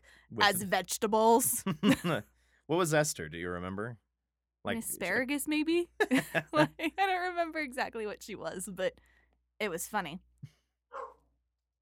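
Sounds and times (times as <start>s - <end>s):
speech: 0.3s - 4.0s, 4.6s - 10.3s
laughter: 1.6s - 2.2s, 6.0s - 7.2s
single sharp dog bark: 10.9s - 11.2s.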